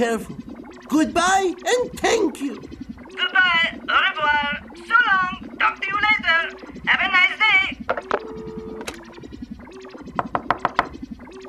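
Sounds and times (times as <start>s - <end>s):
speech: 0.0s - 8.5s
light music with sustained tones: 0.0s - 11.4s
crisp knocks on a door: 10.1s - 10.9s.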